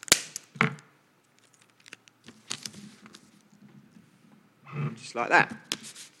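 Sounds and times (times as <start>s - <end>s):
sellotape snapping: 0.0s - 0.5s
sellotape and paper envelope crackling and rustling: 1.2s - 3.6s, 5.6s - 6.1s
speech: 5.0s - 6.0s.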